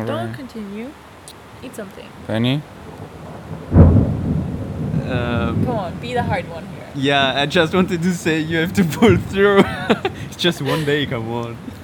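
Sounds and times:
speech: 0.0s - 3.6s, 5.1s - 11.8s
heavy rain: 0.0s - 11.8s
deep rumble: 2.1s - 10.4s
laughter: 7.0s - 11.8s.

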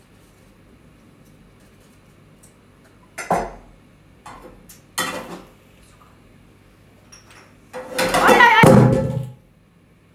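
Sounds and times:
frying pan falling onto the floor: 7.8s - 9.4s.

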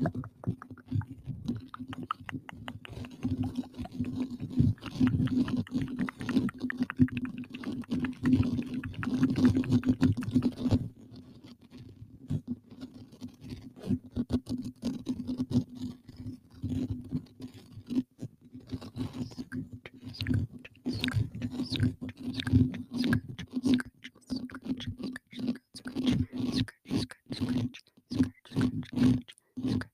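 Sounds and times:
wet mouth sounds: 0.0s - 10.9s, 18.7s - 29.9s
fast aggressive scratching against a microphone: 0.0s - 29.9s.

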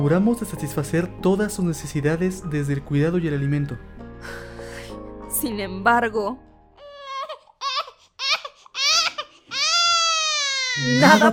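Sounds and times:
speech: 0.0s - 4.5s, 5.4s - 6.5s, 10.8s - 11.3s
baby crying and wailing: 6.8s - 11.3s.

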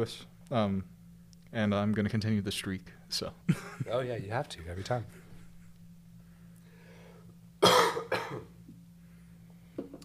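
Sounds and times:
speech: 0.0s - 0.9s, 1.5s - 5.2s, 8.3s - 8.5s
harsh coughs: 7.6s - 8.6s.

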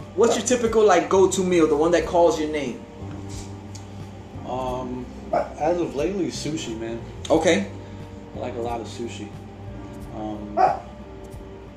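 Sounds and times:
speech: 0.2s - 2.9s, 5.3s - 7.8s, 8.4s - 9.4s, 10.2s - 10.8s
dog barking for attention: 5.3s - 5.6s, 10.6s - 10.9s.

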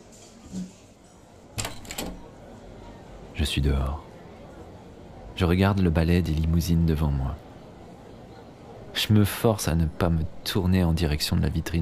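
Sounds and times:
faintly murmuring background: 0.0s - 11.8s
restaurant door opening with clattering knocks: 1.6s - 2.2s
speech: 3.4s - 4.1s, 5.4s - 7.4s, 9.0s - 11.8s.

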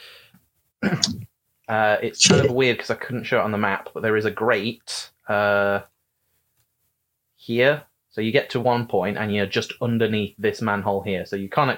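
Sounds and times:
person sneezing: 0.8s - 1.2s, 2.2s - 2.6s
speech: 0.8s - 5.9s, 7.4s - 11.7s.

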